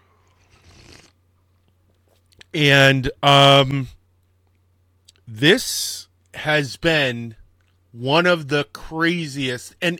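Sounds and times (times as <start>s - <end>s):
slurping sip of coffee from a cup: 0.4s - 1.2s
speech: 2.5s - 4.0s, 5.3s - 9.9s.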